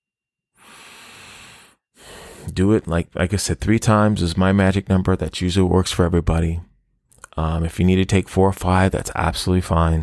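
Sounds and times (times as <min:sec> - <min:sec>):
deep breath drawn in as a calming exercise: 0:00.6 - 0:02.5
speech: 0:02.5 - 0:06.7, 0:07.4 - 0:10.0.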